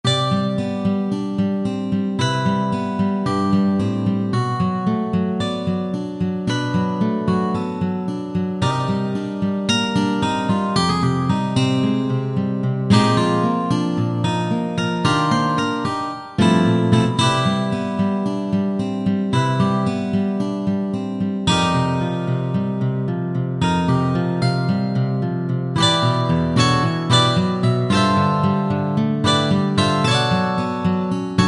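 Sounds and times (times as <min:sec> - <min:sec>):
solo guitar: 0:00.0 - 0:31.4.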